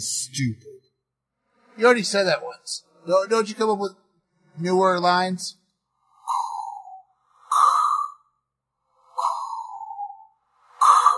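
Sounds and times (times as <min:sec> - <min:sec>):
speech: 0:00.0 - 0:00.8, 0:01.8 - 0:04.0, 0:04.6 - 0:05.6
voice imitating heavy mechanical respirator breathing: 0:06.0 - 0:11.1.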